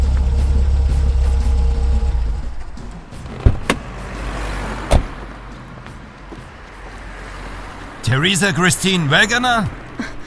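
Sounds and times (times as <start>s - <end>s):
car engine drone while driving and stopping: 0.0s - 10.2s
sharp clunks: 2.8s - 3.9s
speech: 8.2s - 9.8s.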